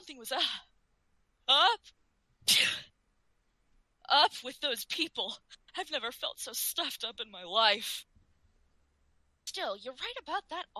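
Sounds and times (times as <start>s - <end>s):
speech: 0.1s - 0.7s, 1.5s - 2.8s, 4.1s - 8.1s, 9.5s - 10.7s
sneeze: 2.5s - 2.9s.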